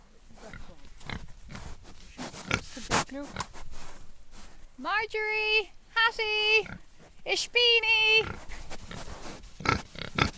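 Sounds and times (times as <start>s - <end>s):
noisy outdoor background on a farm: 0.0s - 10.3s
rare breed pigs grunting and snorting on a farm in hot weather: 0.3s - 3.6s, 8.2s - 10.3s
speech: 3.1s - 3.5s, 4.8s - 8.4s.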